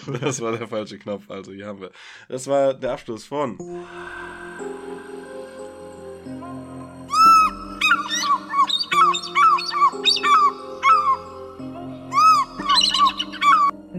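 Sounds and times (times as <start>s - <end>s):
speech: 0.0s - 4.7s
steady humming drone: 3.8s - 9.1s
birds squawking: 7.1s - 13.8s.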